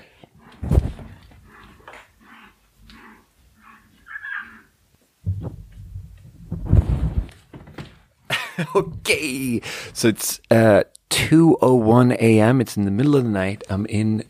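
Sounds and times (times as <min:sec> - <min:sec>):
dog barking and yelping outdoors in the yard: 0:03.0 - 0:04.7
laughter: 0:08.3 - 0:09.6
speech: 0:08.6 - 0:14.2.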